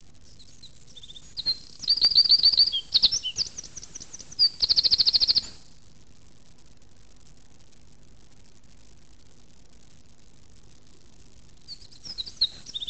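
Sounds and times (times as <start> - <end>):
Eurasian wren singing high-pitched trills and twittering notes: 0.0 - 5.8, 11.6 - 12.8.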